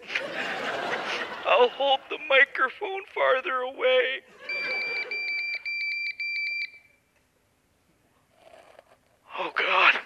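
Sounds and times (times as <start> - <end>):
laughter: 0.0 - 2.6, 4.2 - 5.6
speech: 1.6 - 4.4, 9.4 - 10.0
cell phone low-battery warning beep at 10% battery: 4.5 - 7.0.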